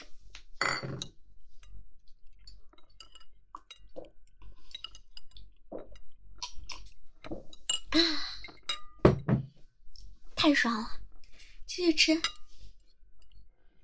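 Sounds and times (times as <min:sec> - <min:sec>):
glasses of cold drinks clinking in a toast: 0:00.6 - 0:01.1, 0:02.8 - 0:09.4
speech: 0:10.4 - 0:11.0, 0:11.8 - 0:12.3.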